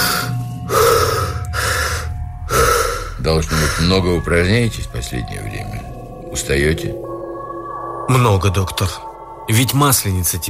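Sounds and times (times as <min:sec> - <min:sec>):
patient breathing deeply during a doctor's examination: 0:00.0 - 0:04.1
speech: 0:03.3 - 0:07.1, 0:08.1 - 0:10.4.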